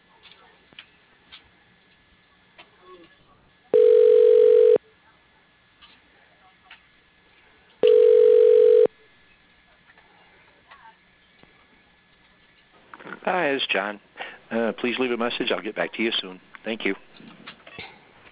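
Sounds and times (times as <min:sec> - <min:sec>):
telephone ringback tone while a call is transferred to voicemail: 0:03.7 - 0:04.8, 0:07.8 - 0:08.9
speech: 0:13.4 - 0:17.3.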